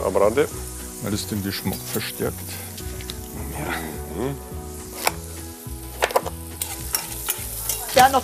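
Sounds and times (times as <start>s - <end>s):
carrots sizzling as they fry in half oil and half butter: 0.0s - 8.2s
speech: 0.1s - 2.7s, 3.6s - 4.6s, 8.0s - 8.2s
stirring clicks and scrapes: 6.0s - 8.2s.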